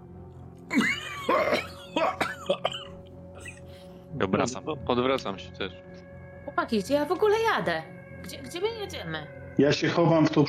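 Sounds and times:
person coughing: 0:00.7 - 0:03.7
speech: 0:04.2 - 0:05.9, 0:06.6 - 0:10.4.

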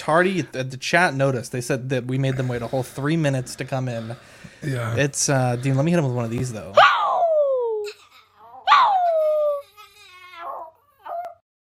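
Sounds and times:
speech: 0:00.0 - 0:07.0
dog howling: 0:06.8 - 0:07.8, 0:08.4 - 0:09.7, 0:10.4 - 0:11.4.

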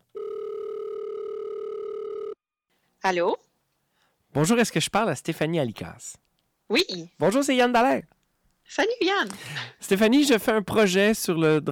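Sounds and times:
telephone dial tone as a call is placed: 0:00.0 - 0:02.4
speech: 0:03.0 - 0:03.5, 0:04.4 - 0:11.7.

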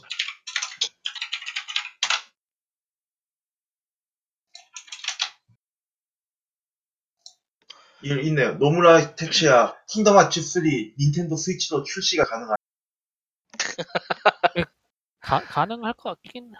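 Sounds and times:
computer keyboard typing: 0:00.0 - 0:02.2, 0:04.8 - 0:05.4
speech: 0:08.0 - 0:12.6, 0:13.8 - 0:16.5
laughter: 0:13.6 - 0:16.5.

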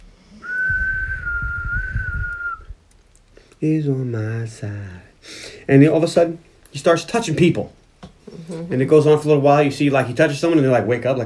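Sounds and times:
man whistling a long steady note: 0:00.4 - 0:02.8
speech: 0:03.6 - 0:07.8, 0:08.5 - 0:11.2.

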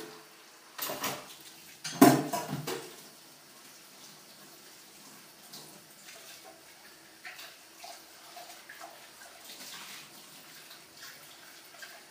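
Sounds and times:
dishes clattering during dishwashing: 0:00.8 - 0:03.0
faint rinsing of dishes: 0:00.9 - 0:12.1.

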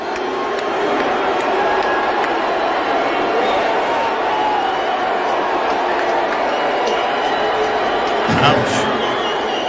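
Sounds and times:
large crowd booing and cheering at a comedy show: 0:00.0 - 0:09.6.

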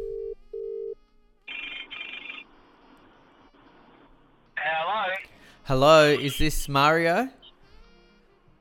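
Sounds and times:
low ringback tones of an outgoing phone call: 0:00.0 - 0:02.4
speech: 0:05.7 - 0:07.4.

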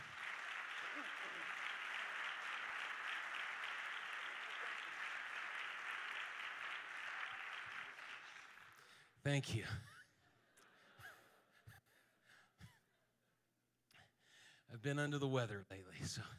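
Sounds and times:
audience clapping hands: 0:00.0 - 0:09.0
speech: 0:09.2 - 0:09.9, 0:14.8 - 0:16.3.

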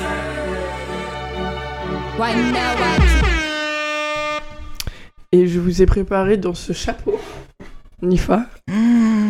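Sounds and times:
podcast jingle of blaring horn-like tones: 0:00.0 - 0:04.8
speech: 0:02.2 - 0:03.3, 0:05.3 - 0:09.1
click: 0:04.7 - 0:04.9.

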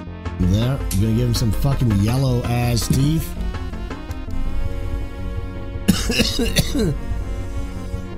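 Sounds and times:
speech: 0:00.4 - 0:03.5, 0:06.1 - 0:07.1
steady humming tonal background: 0:03.4 - 0:08.1
person with bronchitis coughing: 0:05.9 - 0:07.1.

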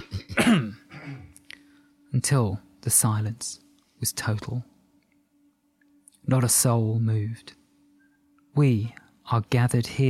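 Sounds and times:
woman addressing a gathering clearing her throat: 0:00.0 - 0:01.3
speech: 0:00.5 - 0:00.8, 0:02.2 - 0:04.7, 0:06.3 - 0:07.6, 0:08.6 - 0:10.0
faint breath: 0:01.5 - 0:02.1.

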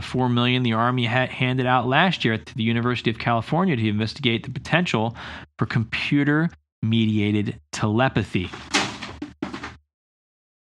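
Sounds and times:
speech: 0:00.1 - 0:08.8
books tumbling off a bookshelf: 0:08.5 - 0:09.8.

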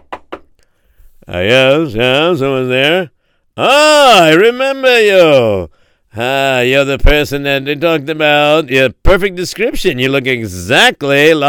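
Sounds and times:
man knocking on a wooden door in Vienna: 0:00.0 - 0:00.5
speech: 0:01.3 - 0:11.4.

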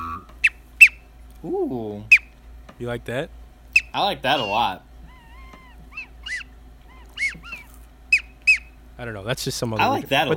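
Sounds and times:
goose call blown in short nasal honks: 0:00.0 - 0:01.0, 0:03.8 - 0:08.7
steady low hum: 0:00.0 - 0:10.3
speech: 0:01.4 - 0:02.2, 0:02.8 - 0:04.9, 0:09.0 - 0:10.3.

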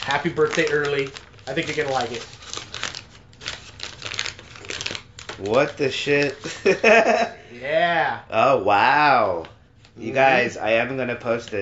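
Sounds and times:
small white paper bag holding a birthday gift rustling and crinkling: 0:00.0 - 0:06.8
speech: 0:00.1 - 0:02.4, 0:05.4 - 0:11.5
laughter: 0:06.4 - 0:07.6.

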